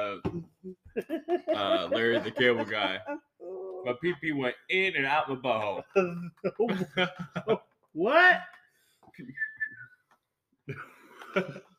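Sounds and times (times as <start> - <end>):
laughter: 1.0 - 3.4, 6.0 - 7.7
speech: 1.6 - 3.2, 3.8 - 8.5, 10.7 - 11.7
brief steady whistled tone: 9.2 - 10.1.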